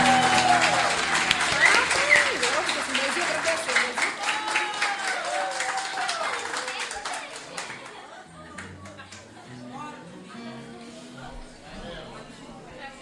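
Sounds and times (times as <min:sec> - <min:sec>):
audience voices calling out: 0:00.0 - 0:04.8
audience clapping for youth performance: 0:00.0 - 0:09.4.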